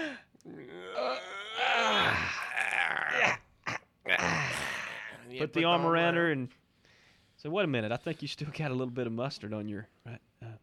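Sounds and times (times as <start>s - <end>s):
loud exaggerated yawn with groaning voice: 0.0s - 3.4s, 4.1s - 5.3s
speech: 5.4s - 6.6s, 7.4s - 10.2s.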